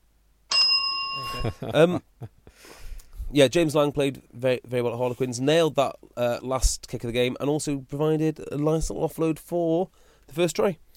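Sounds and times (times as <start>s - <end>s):
single bright synthetic electronic bell ding: 0.5s - 1.6s
speech: 1.3s - 10.9s.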